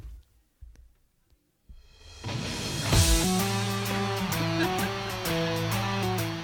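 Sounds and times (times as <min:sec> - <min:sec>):
pop song with full band arrangement: 0:03.0 - 0:06.4.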